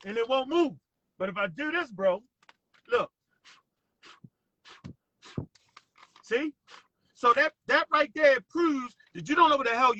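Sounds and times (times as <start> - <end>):
speech: 0.0 - 2.3, 2.9 - 3.6, 6.3 - 9.9
puffs of air blown across a sheet of paper: 3.4 - 6.9.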